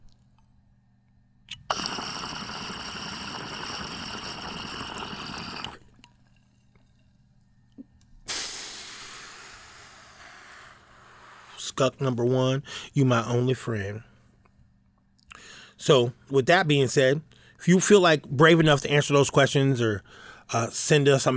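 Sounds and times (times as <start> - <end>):
watery gurgling and bubbling of a bong hit with marijuana: 1.5 - 11.5
speech: 11.8 - 14.1, 15.8 - 21.3.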